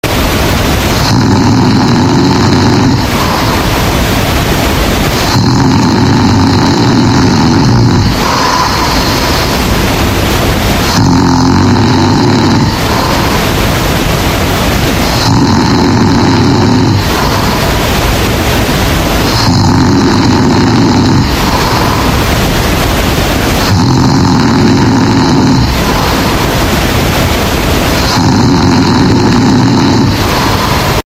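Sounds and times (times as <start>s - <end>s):
loud distorted earrape snoring: 0.0s - 31.0s.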